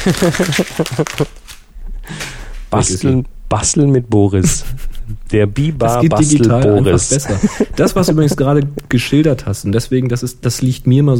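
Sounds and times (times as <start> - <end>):
laughter: 0.0 - 1.4, 5.8 - 9.6
speech: 0.0 - 1.4, 2.1 - 11.1
sheet of paper used as a mask crinkling and rustling: 0.0 - 1.7.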